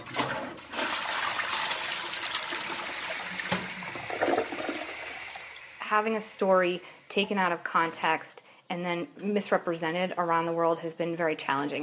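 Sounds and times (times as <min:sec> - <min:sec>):
toilet flushing: 0:00.0 - 0:06.1
speech: 0:05.9 - 0:11.8.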